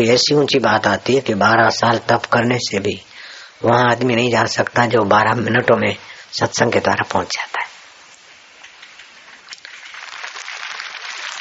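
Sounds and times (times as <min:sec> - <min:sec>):
speech: 0:00.0 - 0:07.7
audience clapping at a satsang spiritual gathering: 0:09.4 - 0:11.3.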